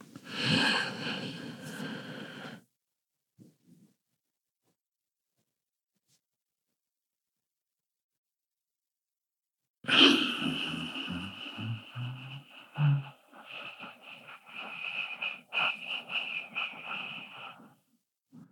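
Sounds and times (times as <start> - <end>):
slow deep breath in and out as a calming exercise: 0.2 - 2.6, 9.9 - 18.4.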